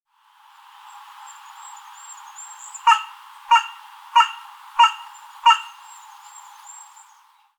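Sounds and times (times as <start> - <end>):
faint hiss: 0.1 - 7.5
Carrion crow Corvus corone giving harsh hoarse caws: 2.8 - 5.9.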